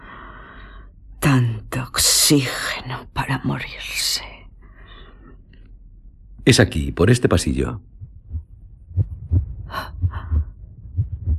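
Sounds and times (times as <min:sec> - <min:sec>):
speech: 0:01.4 - 0:04.3, 0:06.4 - 0:08.0
heartbeat thumping in low beats: 0:07.8 - 0:11.3.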